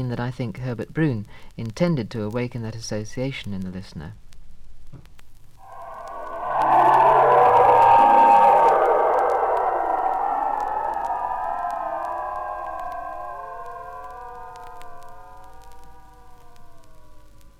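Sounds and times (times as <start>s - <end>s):
speech: 0.0s - 4.2s
ring-modulated electronic sine tones in dense metallic cluster: 5.6s - 17.5s.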